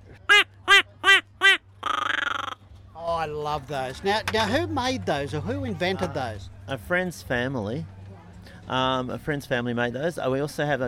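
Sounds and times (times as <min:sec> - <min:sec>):
duck call blown quacking: 0:00.3 - 0:02.6
speech: 0:03.2 - 0:08.0, 0:08.7 - 0:10.8.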